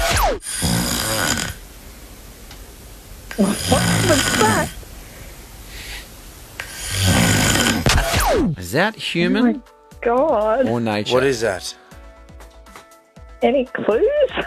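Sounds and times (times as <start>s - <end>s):
person snoring while asleep: 0.4s - 1.6s, 3.3s - 4.8s, 5.7s - 7.9s
speech: 3.4s - 4.8s, 8.7s - 11.8s, 13.4s - 14.4s.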